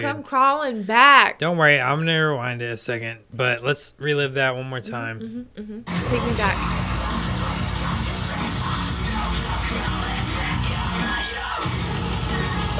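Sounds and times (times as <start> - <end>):
speech: 0.0 - 7.0
distorted heavy metal guitars: 4.8 - 12.7
harsh screamed vocals in heavy metal: 10.1 - 12.7.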